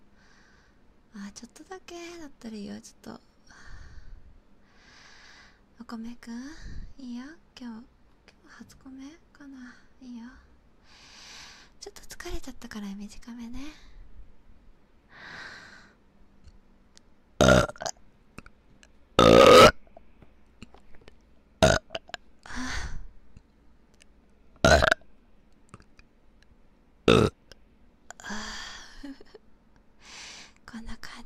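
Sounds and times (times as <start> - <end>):
speech: 1.3 - 3.3, 5.9 - 11.1, 11.8 - 13.9
loud burps: 17.4 - 17.9, 19.2 - 19.9, 21.6 - 22.2, 24.6 - 25.0, 27.1 - 27.4.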